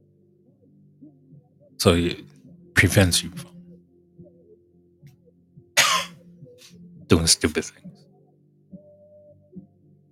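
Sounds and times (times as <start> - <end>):
speech: 1.0 - 3.5, 7.1 - 8.0
loud cough: 5.8 - 6.2.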